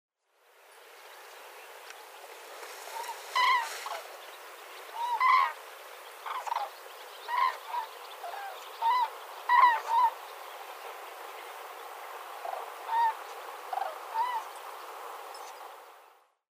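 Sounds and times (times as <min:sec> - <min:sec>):
steady background hiss: 0:00.2 - 0:16.4
Common Crane trumpeting honk calls: 0:02.8 - 0:04.1, 0:04.9 - 0:05.6, 0:06.2 - 0:10.2, 0:12.4 - 0:14.5.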